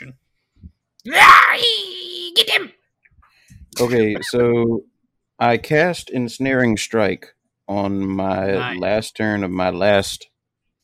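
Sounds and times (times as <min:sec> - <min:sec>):
speech: 0:01.0 - 0:02.8, 0:03.7 - 0:10.3
laughter: 0:03.8 - 0:04.6
voice imitating a druid woman screeching: 0:08.6 - 0:08.8.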